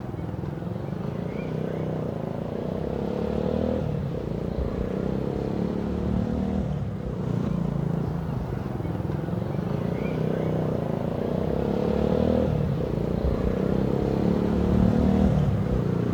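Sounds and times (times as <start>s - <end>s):
distant motorcycle: 0.0s - 16.1s.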